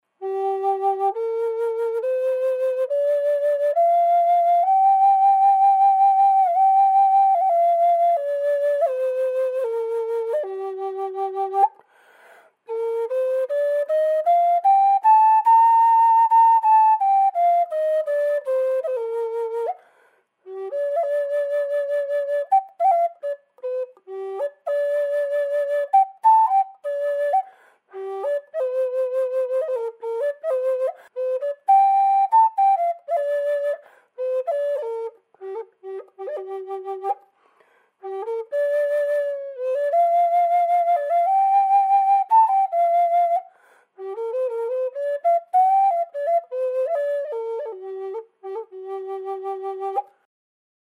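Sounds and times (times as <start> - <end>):
flutes: 0.0 - 50.3.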